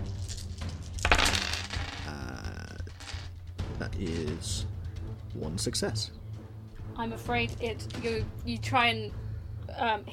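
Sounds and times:
seven dice rolled across a hard surface for a game attack: 0:00.0 - 0:03.3
speech: 0:03.8 - 0:04.7, 0:05.4 - 0:06.2, 0:07.0 - 0:09.2, 0:09.8 - 0:10.1.

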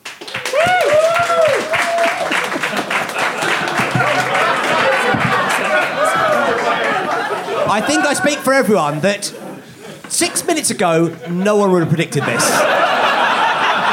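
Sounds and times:
live audience applauding to vote on a debate: 0:00.0 - 0:08.9
people whooping: 0:00.3 - 0:08.4
laughter: 0:01.2 - 0:13.9
speech: 0:07.8 - 0:09.4, 0:10.2 - 0:12.8.

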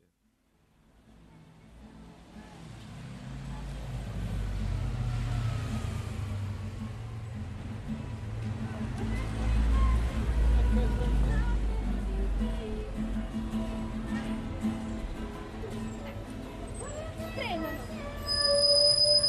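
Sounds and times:
faint voices: 0:00.8 - 0:05.6, 0:06.8 - 0:19.2
bus engine rumble: 0:01.6 - 0:19.2
bus brakes screeching: 0:17.7 - 0:19.2.

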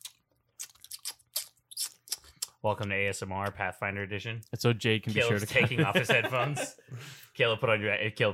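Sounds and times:
person chewing popcorn close to the microphone: 0:00.0 - 0:02.6
speech: 0:02.6 - 0:08.3
laughter: 0:05.1 - 0:07.0.

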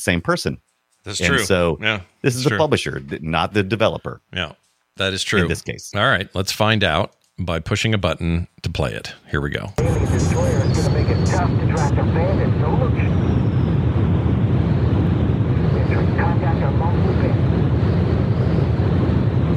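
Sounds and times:
speech: 0:00.0 - 0:13.3
brief electronic beeps: 0:09.8 - 0:13.8
video game jet engine roar with faint high whine: 0:09.8 - 0:19.5.

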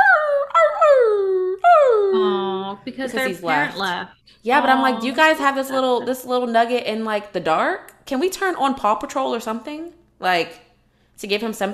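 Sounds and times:
person vocally imitating a puppy howling and whimpering: 0:00.0 - 0:02.8
speech: 0:02.8 - 0:10.6, 0:11.2 - 0:11.7.

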